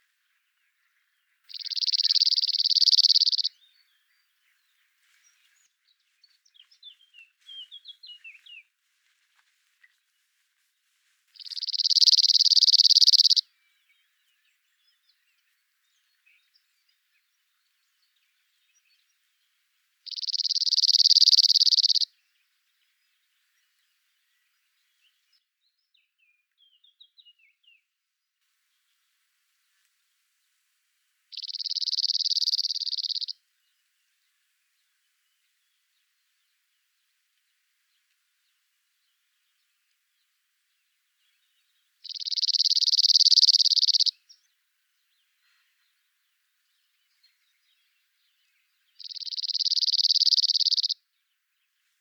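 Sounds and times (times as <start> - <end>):
Blackcap in the background: 0.4 - 8.6, 11.4 - 27.9, 31.3 - 33.9, 37.9 - 51.9.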